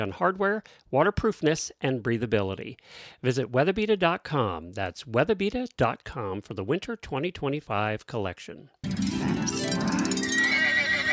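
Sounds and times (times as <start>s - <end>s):
speech: 0.0s - 9.9s
horse whinnying: 10.3s - 11.1s.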